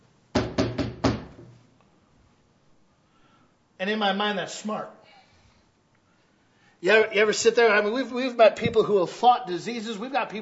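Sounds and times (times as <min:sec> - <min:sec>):
firm knocking on a door: 0:00.3 - 0:01.5
speech: 0:03.8 - 0:05.0, 0:06.8 - 0:10.4.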